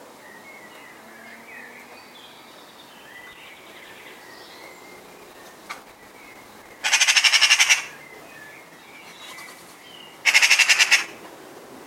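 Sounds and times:
Eurasian magpie Pica pica rasping chatter: 6.5s - 8.3s, 9.1s - 11.2s.

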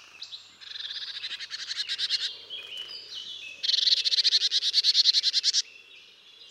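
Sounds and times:
marsh tit Poecile palustris calls: 0.6s - 5.7s.

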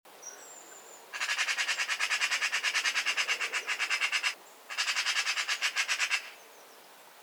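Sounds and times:
Eurasian magpie Pica pica rattle of dry chak notes: 1.2s - 6.2s.

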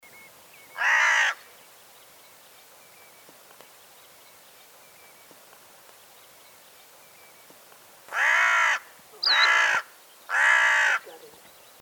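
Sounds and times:
carrion crow Corvus corone cawing: 0.8s - 1.4s, 8.1s - 11.2s.

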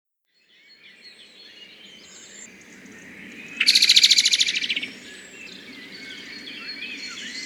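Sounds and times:
background bird calls: 0.3s - 7.4s
common blackbird Turdus merula rattling chatter: 3.6s - 4.8s.

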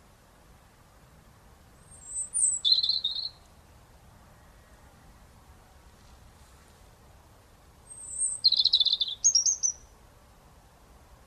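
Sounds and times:
European robin Erithacus rubecula song: 1.7s - 5.4s, 7.5s - 10.0s.

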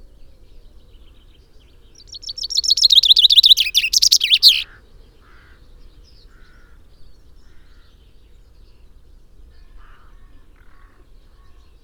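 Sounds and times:
common chaffinch Fringilla coelebs song: 2.0s - 4.7s.

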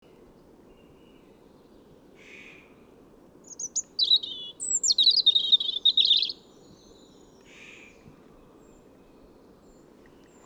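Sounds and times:
European robin Erithacus rubecula singing: 3.4s - 7.2s.

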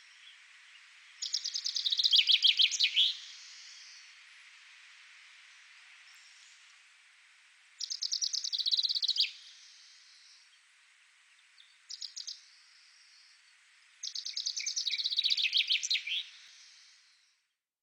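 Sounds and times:
common chaffinch Fringilla coelebs singing rattling songs: 0.0s - 4.1s, 7.8s - 10.5s, 11.6s - 13.4s, 14.0s - 17.0s
common chaffinch chirp pair: 0.0s - 4.1s, 7.8s - 10.6s, 11.3s - 17.6s.

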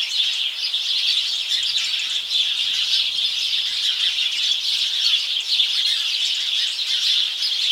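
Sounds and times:
Passer domesticus flock calling: 0.2s - 7.6s.

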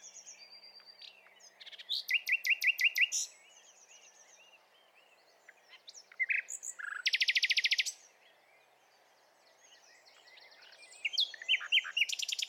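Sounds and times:
Common nightingale Luscinia megarhynchos singing with chatter and buzzy trill: 0.0s - 12.4s
faint background birds: 0.0s - 12.4s.

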